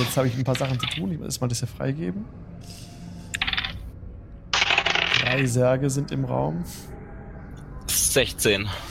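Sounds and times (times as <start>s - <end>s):
speech: 0.0s - 2.9s, 5.3s - 7.0s, 8.2s - 8.8s
dice rolling across a hard surface: 3.4s - 3.8s, 4.5s - 5.5s.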